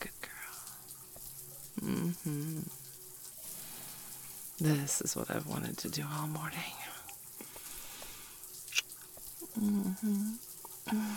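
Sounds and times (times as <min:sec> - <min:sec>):
shower water running: 0:00.0 - 0:11.1
person humming: 0:01.8 - 0:02.8, 0:09.4 - 0:11.1
speech: 0:01.8 - 0:02.9, 0:04.6 - 0:07.0, 0:09.6 - 0:11.1.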